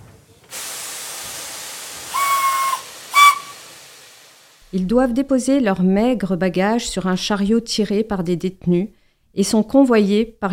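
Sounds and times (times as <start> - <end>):
steam train steam hissing at a small red-brick station: 0.0 - 4.7
steam train whistle blasts: 2.0 - 3.7
speech: 4.7 - 10.5.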